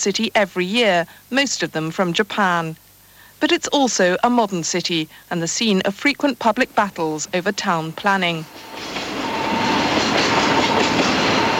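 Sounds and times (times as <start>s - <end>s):
speech: 0.0s - 2.8s, 3.4s - 9.0s
train rumbling through a station: 6.4s - 11.5s
thin metallic whine of a train: 6.5s - 11.5s.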